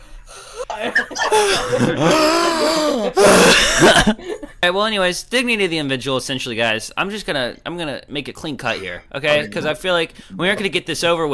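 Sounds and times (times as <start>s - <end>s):
laughter: 0.6s - 4.6s
speech: 0.8s - 11.3s
person loudly imitating an exaggerated yawn: 1.3s - 3.6s.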